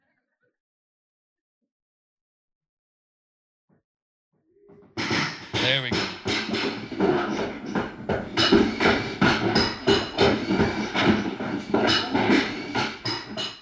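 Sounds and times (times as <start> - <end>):
hammer blows building a house: 4.7 - 13.6
speech: 5.7 - 6.1.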